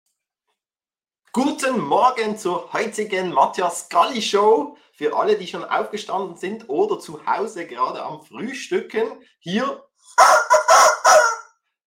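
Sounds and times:
speech: 0:01.3 - 0:10.5
rooster crowing: 0:10.2 - 0:11.5.

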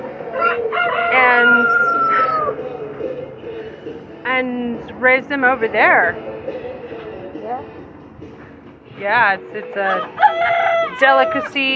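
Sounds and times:
show chickens clucking: 0:00.0 - 0:04.0, 0:09.6 - 0:11.7
show chicken crowing: 0:00.3 - 0:02.7, 0:09.9 - 0:11.7
speech: 0:04.4 - 0:06.6, 0:09.0 - 0:11.7.

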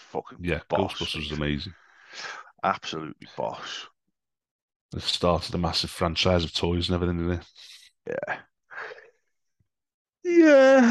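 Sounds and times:
speech: 0:00.1 - 0:03.9, 0:04.9 - 0:09.0, 0:10.2 - 0:10.8
person yawning: 0:10.3 - 0:10.8.

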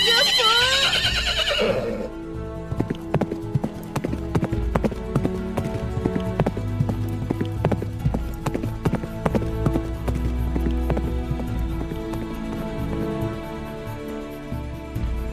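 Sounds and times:
horse whinnying: 0:00.0 - 0:02.2
horse hooves clip-clopping: 0:02.6 - 0:15.2.

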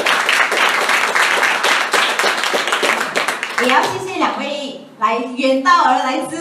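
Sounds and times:
crowd applauding: 0:00.0 - 0:04.1
speech: 0:05.0 - 0:06.4.

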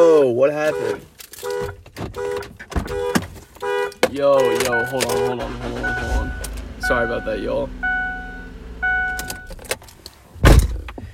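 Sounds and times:
speech: 0:00.0 - 0:03.0, 0:04.1 - 0:07.9
car alarm steady electronic tone triggered by key fob: 0:00.6 - 0:09.6.

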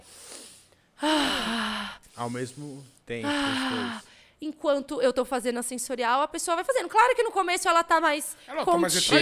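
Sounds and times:
person doing an energizing breathing exercise: 0:00.0 - 0:02.5, 0:03.2 - 0:04.3
speech: 0:02.2 - 0:09.2.

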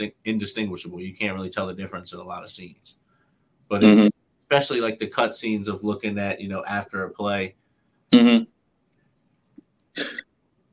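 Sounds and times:
speech: 0:00.0 - 0:03.0, 0:03.7 - 0:08.5, 0:10.0 - 0:10.2
single sharp sneeze: 0:10.0 - 0:10.2.

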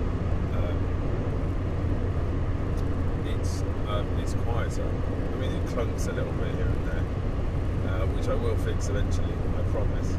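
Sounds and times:
car engine and road drone in a car cabin while driving: 0:00.0 - 0:10.1
speech: 0:04.8 - 0:07.2, 0:08.0 - 0:10.1.

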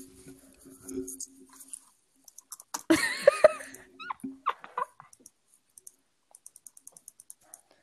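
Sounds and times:
computer mouse clicking: 0:02.2 - 0:02.9, 0:05.1 - 0:07.8
laughter: 0:02.9 - 0:05.0
dog whimpering and yipping: 0:04.0 - 0:04.9.

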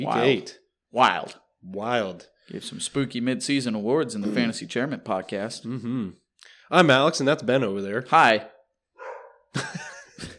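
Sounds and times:
speech: 0:00.0 - 0:08.5, 0:09.5 - 0:10.3
dog barking sharply: 0:09.0 - 0:09.5
laughter: 0:09.6 - 0:10.3.

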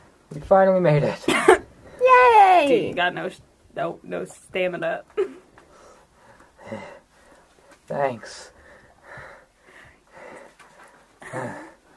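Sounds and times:
speech: 0:00.3 - 0:01.5, 0:02.6 - 0:05.4, 0:06.7 - 0:07.0, 0:07.9 - 0:08.6, 0:11.3 - 0:11.6
person panting heavily with huffing breaths and gasps: 0:05.7 - 0:07.4, 0:08.6 - 0:11.9.

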